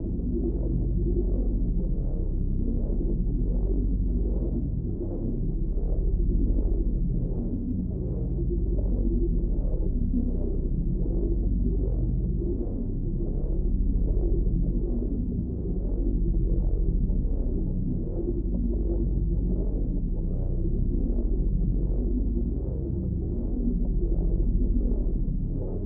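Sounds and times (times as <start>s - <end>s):
deep disturbing cyber drone pulse: 0.0s - 25.8s.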